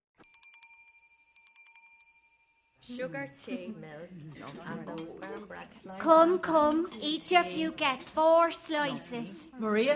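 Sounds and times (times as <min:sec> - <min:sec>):
bright metallic bell rung to call people to tea: 0:00.2 - 0:03.0
speech: 0:02.9 - 0:09.9.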